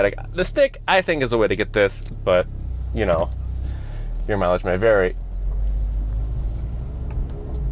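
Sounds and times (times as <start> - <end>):
speech: 0.0 - 3.4, 4.3 - 5.2
sports car with active exhaust idling: 0.0 - 7.7.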